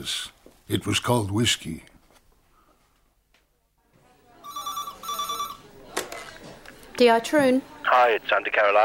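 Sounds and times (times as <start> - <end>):
speech: 0.0 - 1.9, 7.0 - 8.8
telephone ringing on an outgoing call from a mobile phone: 4.4 - 5.7.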